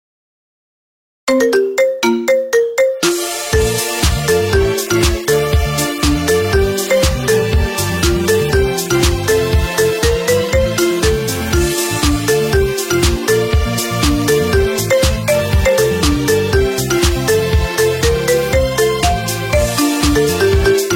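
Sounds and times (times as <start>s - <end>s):
marimba: 1.3s - 20.9s.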